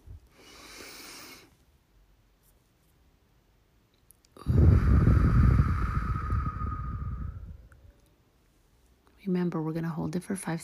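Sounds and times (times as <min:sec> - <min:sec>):
long forceful breath drawn in through the nose: 0:00.3 - 0:01.5, 0:04.4 - 0:07.7
speech: 0:09.3 - 0:10.6.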